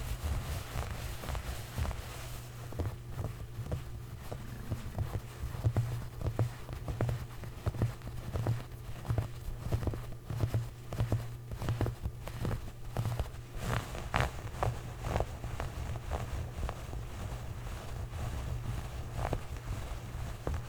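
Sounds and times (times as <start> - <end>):
clothes scratching and rubbing: 0.0 - 20.6.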